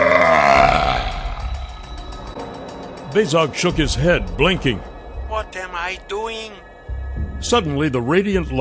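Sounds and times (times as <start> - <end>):
dragon-like creature roar: 0.0 - 1.4
speech: 3.1 - 4.9, 5.9 - 6.7, 7.4 - 8.5.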